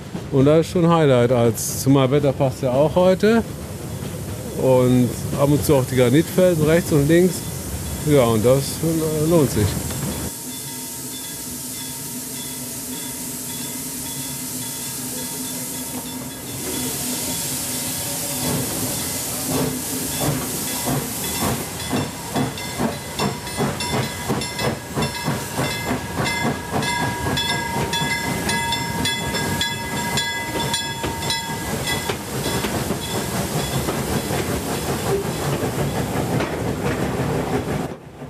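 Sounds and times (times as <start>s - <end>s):
coal-fired steam train clattering along tracks in Sweden: 0.0s - 38.2s
speech: 0.3s - 3.6s, 4.6s - 9.8s.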